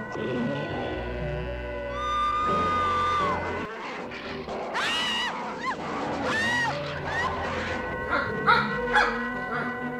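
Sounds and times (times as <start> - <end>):
speech: 0.1 - 0.9
several dogs barking and yelping: 1.9 - 9.8.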